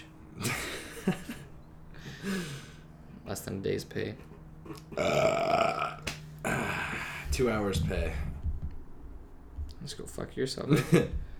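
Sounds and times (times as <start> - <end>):
laughter: 0.3 - 2.7, 3.9 - 5.3, 10.6 - 11.3
speech: 3.4 - 5.9, 7.4 - 8.3, 9.8 - 11.2
long loud rough burp: 4.7 - 7.4.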